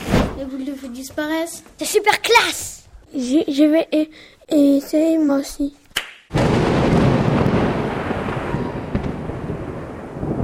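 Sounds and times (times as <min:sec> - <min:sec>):
speech: 0:00.4 - 0:06.4
storm noise: 0:06.3 - 0:10.4
thunderclap rolling into heavy rumble: 0:06.3 - 0:10.4.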